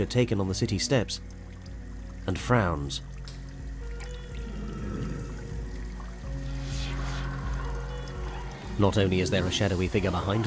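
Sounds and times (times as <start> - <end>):
speech: 0.0 - 1.4, 2.3 - 3.1, 8.8 - 10.4
liquid swishing as photographic paper is moved in developing solution with wooden tweezers: 4.0 - 8.8.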